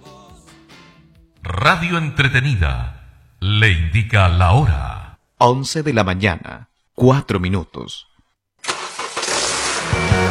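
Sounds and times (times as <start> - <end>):
speech: 1.6 - 8.1
car engine cranking and settling into a rumbling idle: 8.6 - 10.2.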